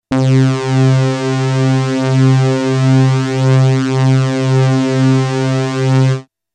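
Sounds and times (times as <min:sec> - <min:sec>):
wide multisaw synthesizer patch: 0:00.0 - 0:06.3.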